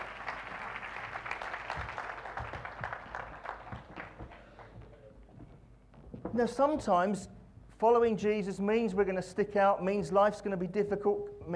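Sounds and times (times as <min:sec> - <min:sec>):
crowd applauding in a large room: 0:00.0 - 0:05.1
speech: 0:06.4 - 0:11.5.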